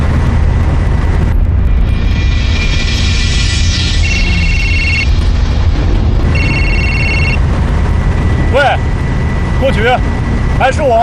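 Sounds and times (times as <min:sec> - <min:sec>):
car engine at full throttle with the accelerator floored: 0:00.0 - 0:11.0
thin high-pitched tones: 0:01.7 - 0:05.4, 0:06.2 - 0:07.4
speech: 0:09.7 - 0:11.0.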